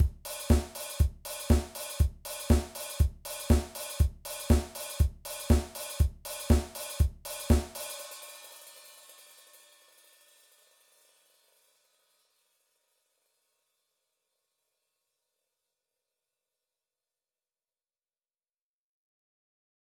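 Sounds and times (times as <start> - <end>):
disco groove music: 0.0 - 7.7.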